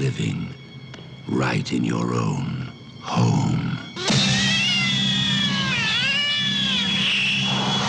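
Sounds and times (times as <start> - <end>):
speech: 0.2 - 0.6, 1.3 - 3.8
cat meowing: 4.0 - 7.8.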